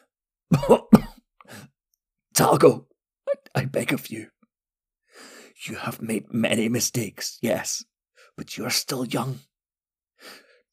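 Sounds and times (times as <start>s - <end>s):
speech: 0.5s - 1.0s, 2.4s - 2.9s, 3.6s - 4.4s, 5.2s - 9.5s, 10.2s - 10.4s
person coughing dryly: 0.5s - 1.2s.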